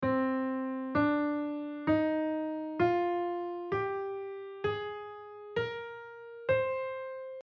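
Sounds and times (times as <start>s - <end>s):
music in C minor: 0.0s - 7.4s.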